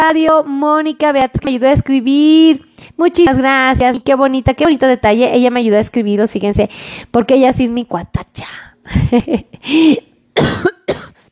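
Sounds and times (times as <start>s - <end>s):
speech: 0.1s - 11.1s
person choking in a harsh raspy coughing fit: 9.6s - 11.3s.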